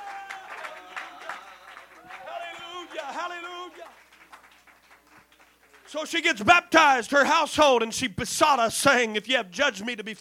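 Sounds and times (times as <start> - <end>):
audience applause: 0.0 - 6.2
speech: 3.0 - 4.0, 5.9 - 10.2.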